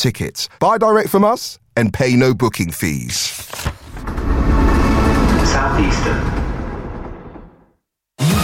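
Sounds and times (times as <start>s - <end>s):
speech: 0.0s - 3.8s, 5.5s - 6.4s
moving train rumbling with rattling: 3.9s - 7.7s.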